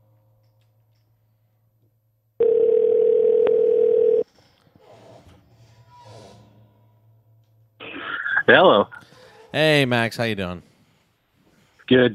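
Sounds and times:
telephone dial tone: 2.4 - 4.2
speech: 8.5 - 10.7, 11.9 - 12.1
faint breathing: 9.0 - 9.5, 10.6 - 11.9.

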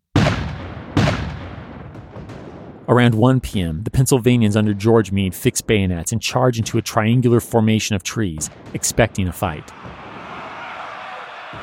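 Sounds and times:
Confederate artillery guns firing on advancing Federal lines in a battle: 0.1 - 3.0, 8.4 - 10.9
speech: 2.9 - 10.0.

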